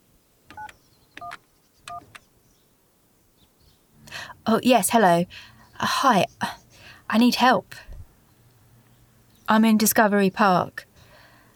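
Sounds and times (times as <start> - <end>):
touch-tone beeps from a phone box keypad dialing 911: 0.5 - 2.0
soft clicks of phone box key presses: 0.5 - 2.2
speech: 4.5 - 7.9, 9.5 - 10.9.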